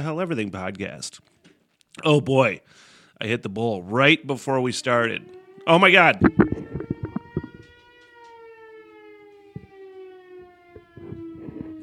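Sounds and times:
speech: 0:00.0 - 0:01.3, 0:02.0 - 0:06.8
outdoor civil-defense noon siren wailing: 0:04.0 - 0:11.8
knocks and clatters: 0:06.2 - 0:07.8.

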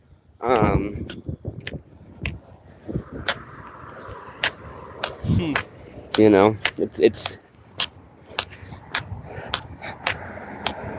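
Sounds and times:
passing cars in outdoor street traffic: 0:00.0 - 0:10.9
speech: 0:00.4 - 0:01.8, 0:05.4 - 0:07.4
loud whining vehicle sweeping by: 0:02.8 - 0:06.2, 0:08.8 - 0:10.9.

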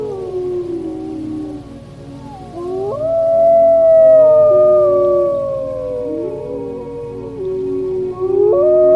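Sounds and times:
pack of wolves howling in chorus: 0:00.0 - 0:08.9.

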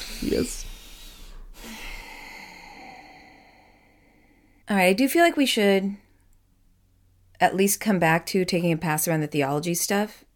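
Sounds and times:
faint exhale: 0:00.0 - 0:04.6
person taking a breath: 0:00.0 - 0:04.6
speech: 0:04.7 - 0:06.0, 0:07.4 - 0:10.2.

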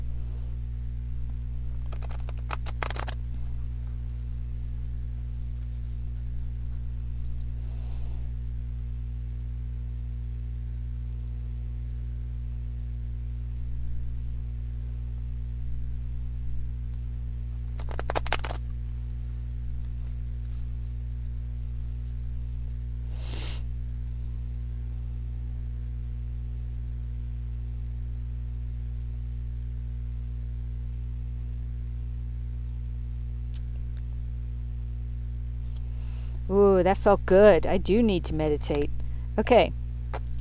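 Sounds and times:
steady low electrical hum: 0:00.0 - 0:40.3
tarot cards being shuffled: 0:01.7 - 0:03.2, 0:17.7 - 0:18.7
speech: 0:36.5 - 0:39.8.

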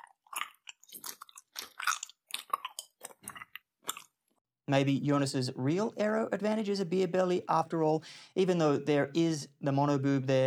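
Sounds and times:
wet gum chewing with smacking mouth sounds: 0:00.0 - 0:04.4
speech: 0:04.7 - 0:10.4.

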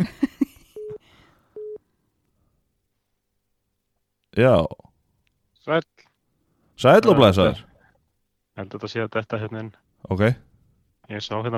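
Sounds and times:
telephone ringing tone beeps on a call: 0:01.6 - 0:01.8
speech: 0:04.4 - 0:04.8, 0:05.6 - 0:06.1, 0:06.8 - 0:07.7, 0:08.6 - 0:10.5, 0:11.1 - 0:11.5.

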